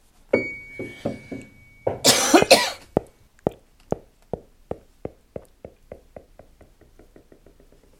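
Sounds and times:
evenly spaced pings: 0:00.3 - 0:03.2
short composed bell-like chime resembling a tram bell: 0:00.4 - 0:02.1.

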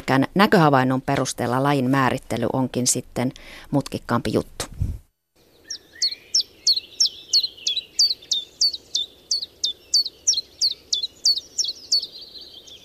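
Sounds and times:
speech: 0:00.1 - 0:05.0
common chiffchaff singing: 0:05.4 - 0:12.8.

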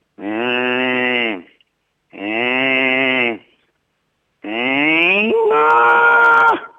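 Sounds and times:
person imitating a cow mooing: 0:00.2 - 0:01.5, 0:02.1 - 0:03.5, 0:04.4 - 0:05.5.

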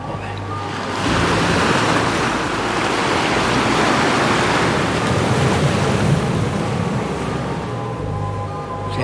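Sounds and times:
wind in a storm at sea: 0:00.0 - 0:09.0
ocean waves crashing in stormy surf: 0:00.4 - 0:08.3.

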